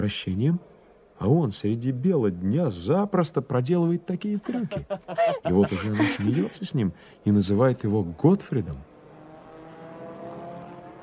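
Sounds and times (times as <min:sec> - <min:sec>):
speech: 0:00.0 - 0:08.9
laughter: 0:04.4 - 0:06.8
racing car engines roaring over a race track: 0:08.8 - 0:11.0.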